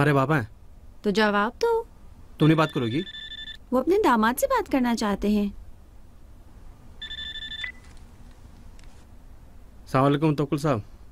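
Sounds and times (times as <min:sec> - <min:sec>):
speech: 0:00.0 - 0:01.8, 0:02.4 - 0:05.6, 0:09.9 - 0:10.9
telephone ringing: 0:02.4 - 0:03.6, 0:07.0 - 0:07.9.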